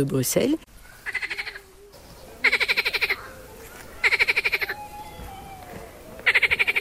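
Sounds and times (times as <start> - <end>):
speech: 0.0 - 0.7
quiet outdoor noise: 0.0 - 6.7
frog croaking: 1.0 - 1.7, 2.4 - 3.4, 4.0 - 4.8, 6.2 - 6.7.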